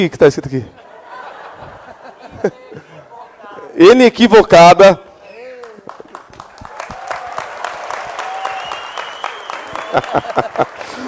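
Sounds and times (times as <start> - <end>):
speech: 0.0 - 0.8, 2.4 - 2.9, 3.8 - 5.0, 10.0 - 11.0
laughter: 0.5 - 3.8, 9.5 - 11.0
crowd applauding: 5.6 - 11.0
whistles from a crowd: 8.2 - 10.1.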